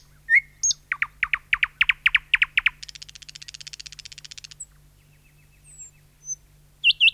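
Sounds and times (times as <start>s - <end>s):
thrush nightingale song with rapid notes and buzzing trill: 0.0s - 7.1s.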